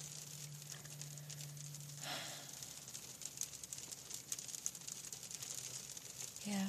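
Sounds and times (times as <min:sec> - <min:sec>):
faint low hum: 0:00.0 - 0:06.6
soft steady rain pattering: 0:00.0 - 0:06.6
speech: 0:06.5 - 0:06.6.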